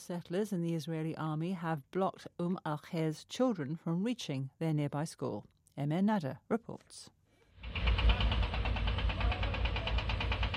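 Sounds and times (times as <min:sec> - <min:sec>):
speech: 0:00.0 - 0:07.9
heavy machinery engine rumble from diggers, cranes and lorries at a hillside site near Hebron: 0:07.6 - 0:10.5
rapid even knocking pulse: 0:07.6 - 0:10.5.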